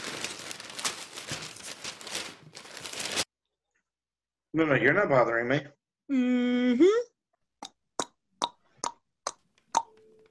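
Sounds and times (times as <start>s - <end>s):
newspaper pages rustling and crinkling: 0.0s - 3.3s
speech: 4.6s - 7.1s.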